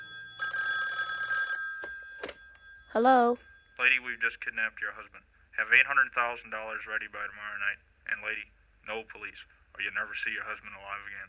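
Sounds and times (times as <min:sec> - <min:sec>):
telephone ringing: 0:00.0 - 0:05.0
speech: 0:02.9 - 0:11.2.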